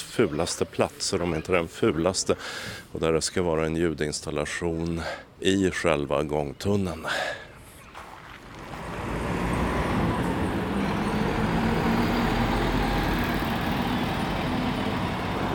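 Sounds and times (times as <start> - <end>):
surrounding city traffic noise: 0.0 - 15.5
speech: 0.2 - 7.4
bus engine drone crossing an open city square in Sweden: 8.4 - 15.5.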